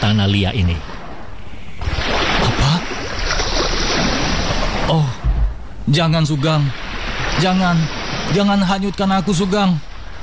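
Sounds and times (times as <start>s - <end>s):
sea water sloshing and lapping around a boat: 0.0s - 10.2s
speech: 0.1s - 1.0s, 4.9s - 5.1s, 5.8s - 6.8s, 7.4s - 9.9s.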